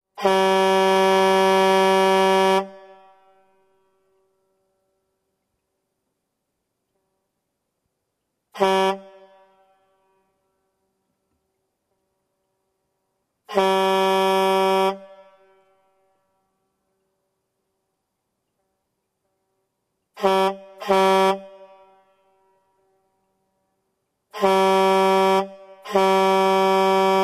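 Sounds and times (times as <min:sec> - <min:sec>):
truck horn signal: 0:00.2 - 0:03.4, 0:08.6 - 0:10.2, 0:13.5 - 0:15.7, 0:20.2 - 0:22.5, 0:24.3 - 0:27.2.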